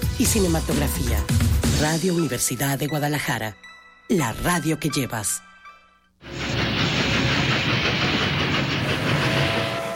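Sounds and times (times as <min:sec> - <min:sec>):
speech: 0:00.2 - 0:05.5
train rumbling on rails: 0:06.4 - 0:09.9.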